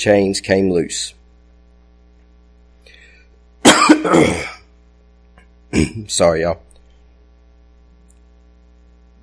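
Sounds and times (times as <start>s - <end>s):
speech: 0.0s - 1.2s, 4.0s - 4.6s, 5.7s - 6.7s
person clearing throat with a raspy rumble: 3.7s - 4.7s, 5.7s - 6.1s
person coughing sharply: 3.7s - 4.7s, 5.7s - 6.1s.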